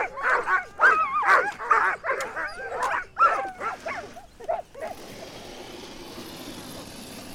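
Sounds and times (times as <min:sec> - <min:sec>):
sled dogs yelping and whining: 0:00.0 - 0:05.4
sled dog team barking and yipping on an ice road: 0:00.0 - 0:07.3.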